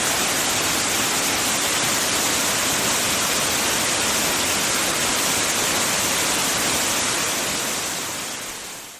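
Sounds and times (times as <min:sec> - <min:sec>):
waterfall: 0:00.0 - 0:08.9.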